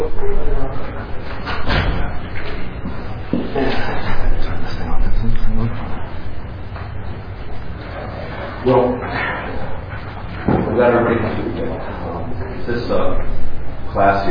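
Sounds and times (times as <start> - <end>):
speech: 0.0 - 2.4, 14.0 - 14.3
roomful of low chatter: 0.0 - 14.3
classroom door pushed shut with a thud: 1.5 - 2.2.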